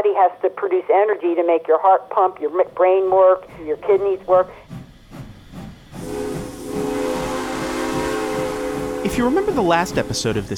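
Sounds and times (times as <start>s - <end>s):
speech: 0.2s - 4.7s, 9.2s - 10.5s
old-fashioned steam locomotive chuffing: 2.2s - 10.5s
loud hiss of steam from a steam locomotive: 3.2s - 10.5s
long steady steam whistle of a steam locomotive: 6.0s - 10.5s.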